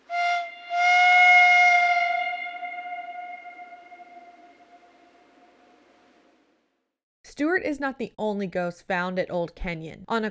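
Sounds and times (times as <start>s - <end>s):
eerie train whistle with tail: 0.0s - 6.3s
speech: 7.6s - 10.3s.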